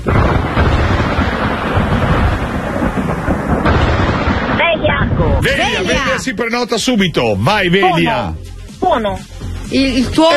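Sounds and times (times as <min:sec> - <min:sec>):
rolling thunder in a thunderstorm: 0:00.0 - 0:06.4
rushing storm-like wash: 0:00.0 - 0:06.5
speech: 0:05.4 - 0:10.3.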